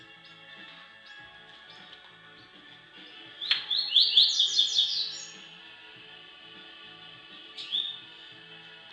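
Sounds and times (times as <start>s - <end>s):
double-collared seedeater singing high rising chirps: 0.0s - 5.6s, 7.4s - 8.2s.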